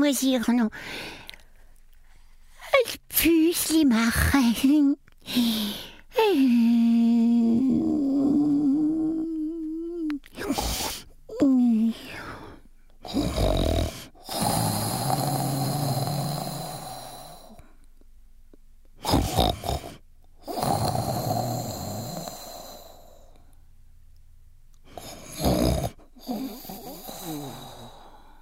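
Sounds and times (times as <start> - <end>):
speech: 0.0 - 1.2, 2.8 - 7.8
voice imitating loud snoring: 6.2 - 17.6, 19.0 - 23.3, 24.9 - 28.3.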